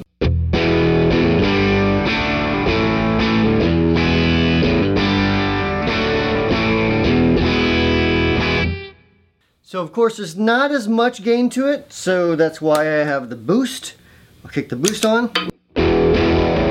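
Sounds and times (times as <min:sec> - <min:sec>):
overdriven electric guitar riff through a Deluxe Reverb amp: 0:00.0 - 0:09.1, 0:15.7 - 0:16.6
speech: 0:09.8 - 0:15.5.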